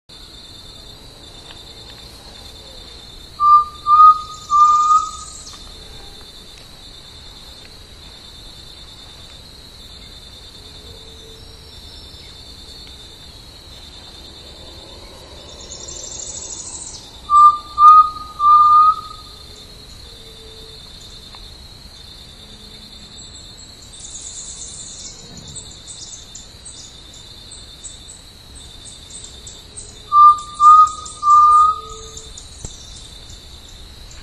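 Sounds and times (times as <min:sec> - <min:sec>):
Crypturellus undulatus calling in Chaco National Park: 0:03.4 - 0:05.5, 0:17.0 - 0:19.4, 0:30.1 - 0:32.3.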